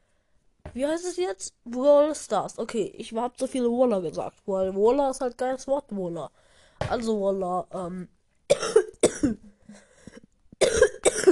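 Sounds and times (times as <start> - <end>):
speech: 0.8 - 8.2
person coughing harshly: 8.5 - 11.3.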